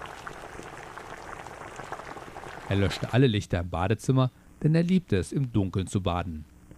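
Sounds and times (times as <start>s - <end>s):
water coming to a boil in a large pot: 0.0s - 3.5s
speech: 2.7s - 6.5s.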